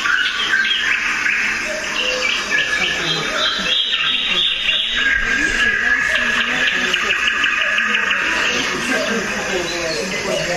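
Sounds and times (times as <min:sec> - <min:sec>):
chorus of many nightingales singing at the edge of a marsh: 0:00.0 - 0:10.5.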